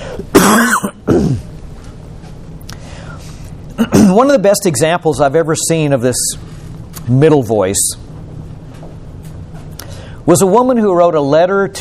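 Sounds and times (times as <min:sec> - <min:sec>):
person coughing and clearing throat: 0:00.2 - 0:01.5, 0:03.8 - 0:04.2
speech: 0:00.2 - 0:01.5, 0:03.9 - 0:08.1, 0:10.3 - 0:11.7.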